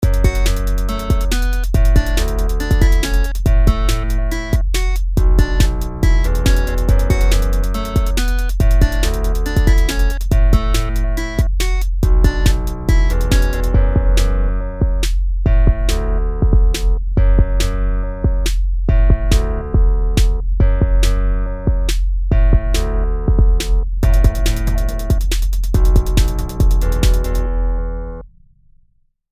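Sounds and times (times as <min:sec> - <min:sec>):
guitar beat: 0:00.0 - 0:27.5.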